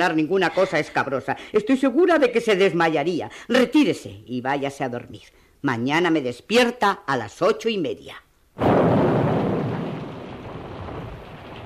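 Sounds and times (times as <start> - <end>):
speech: 0.0 - 9.0
heavy steady rain: 8.6 - 11.6
loud crack of thunder: 8.6 - 11.6.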